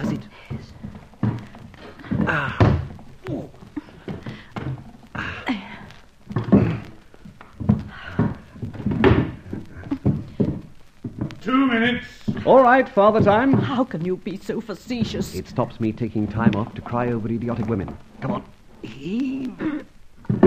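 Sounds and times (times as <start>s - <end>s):
speech: 0.0s - 0.6s, 2.3s - 2.7s, 11.9s - 19.7s
wooden chairs being shoved and stacked against a door: 0.0s - 18.8s, 19.6s - 20.4s.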